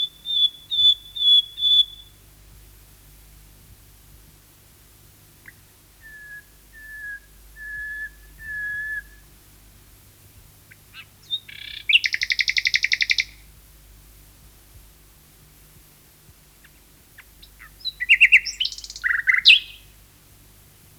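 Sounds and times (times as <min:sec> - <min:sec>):
common nightingale singing: 0:00.0 - 0:02.2, 0:05.5 - 0:09.3, 0:10.7 - 0:13.5, 0:16.6 - 0:20.0.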